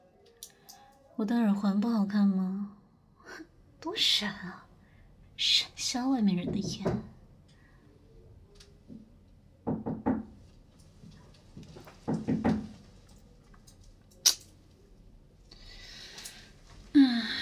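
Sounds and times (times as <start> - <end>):
speech: 1.2 - 2.8, 3.4 - 4.7, 5.4 - 7.1
knocking on a door: 6.4 - 7.1, 9.6 - 10.4, 12.0 - 12.8
sharp click: 14.2 - 14.5.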